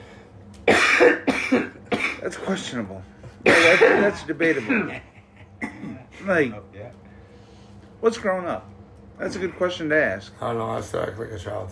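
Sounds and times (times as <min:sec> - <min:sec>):
man coughing while smoking: 0:00.6 - 0:02.6, 0:03.4 - 0:06.2
speech: 0:01.0 - 0:05.1, 0:06.2 - 0:06.7, 0:08.0 - 0:11.7.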